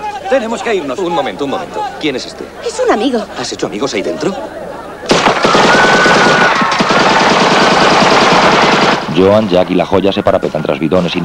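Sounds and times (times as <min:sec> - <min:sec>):
speech: 0:00.3 - 0:04.6, 0:09.2 - 0:11.2
rapid automatic gunfire: 0:05.1 - 0:09.4.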